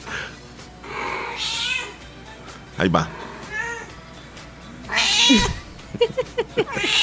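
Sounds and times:
cat meowing, yowling and caterwauling: 0.9s - 2.1s, 3.1s - 4.0s, 4.9s - 5.6s, 6.7s - 7.0s
speech: 2.8s - 3.2s, 5.3s - 7.0s
people laughing: 5.2s - 7.0s.

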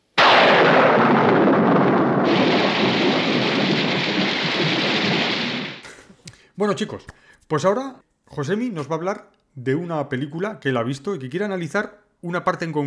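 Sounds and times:
rumbling crack of thunder: 0.0s - 5.9s
sudden loud downpour of heavy rain: 2.2s - 5.8s
speech: 6.6s - 12.8s.

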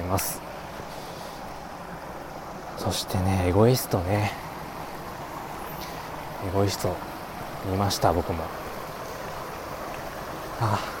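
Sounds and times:
river water rushing: 0.0s - 10.9s
speech: 0.1s - 0.5s, 2.8s - 4.4s, 6.4s - 8.6s, 10.6s - 10.9s.

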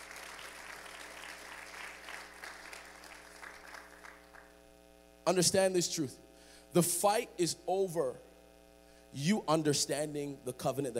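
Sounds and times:
crowd applauding as people leave the stage: 0.0s - 4.6s
speech: 5.3s - 8.3s, 9.1s - 10.9s.

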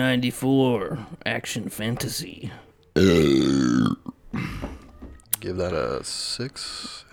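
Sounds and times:
speech: 0.0s - 3.6s, 5.4s - 7.1s
person burping: 3.0s - 4.2s.

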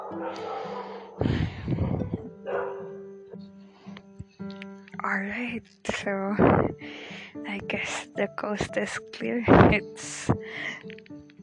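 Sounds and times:
dogs barking outside: 0.0s - 1.2s, 2.4s - 3.0s
speech: 5.2s - 11.1s.

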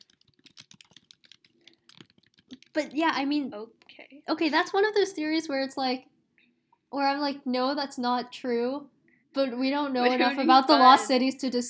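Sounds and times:
fingers typing on a computer keyboard: 0.0s - 3.2s
speech: 2.8s - 6.1s, 6.9s - 11.6s.

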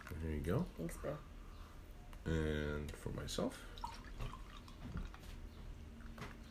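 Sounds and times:
speech: 0.2s - 1.3s, 2.2s - 5.0s
beer pouring into a glass: 3.7s - 5.3s.

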